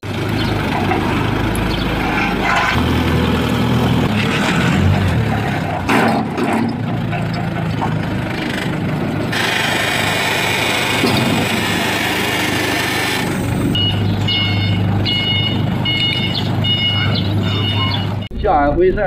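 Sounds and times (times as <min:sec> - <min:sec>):
forklift engine droning while moving parked farm vehicles: 0:00.0 - 0:19.0
high repeating forklift reversing beeps: 0:13.8 - 0:18.3.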